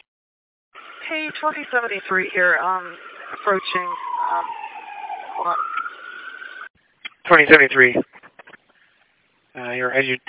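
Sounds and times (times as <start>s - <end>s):
ambulance siren wailing as it passes: 1.0s - 6.7s
speech: 1.1s - 4.6s, 5.4s - 5.7s, 7.3s - 8.1s, 9.6s - 10.2s.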